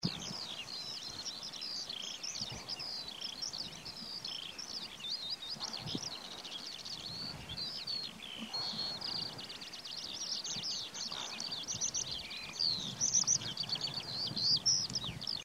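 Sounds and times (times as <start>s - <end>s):
skylark singing: 0.0s - 15.4s.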